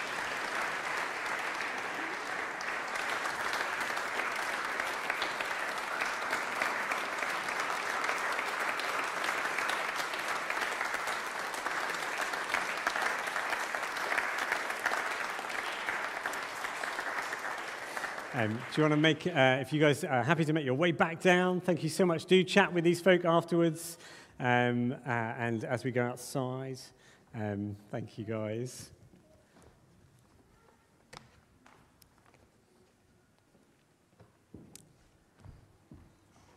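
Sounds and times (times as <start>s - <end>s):
large crowd applauding: 0.0s - 20.6s
speech: 18.4s - 29.0s.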